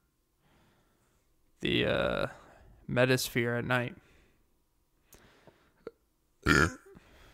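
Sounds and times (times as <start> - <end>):
speech: 1.6 - 4.1, 6.4 - 6.8
loud rumbling burp: 6.4 - 6.9.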